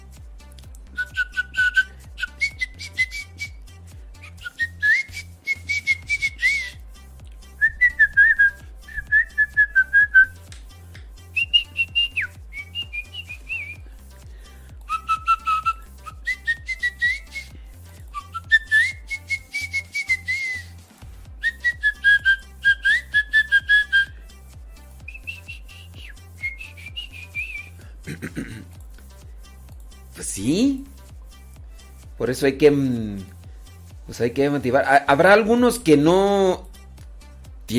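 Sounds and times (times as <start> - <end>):
person whistling a lively wandering melody: 1.0 - 3.6, 4.2 - 6.8, 7.6 - 10.5, 11.4 - 13.8, 14.8 - 20.8, 21.4 - 24.2, 25.0 - 27.8
speech: 32.3 - 33.3, 34.2 - 36.6.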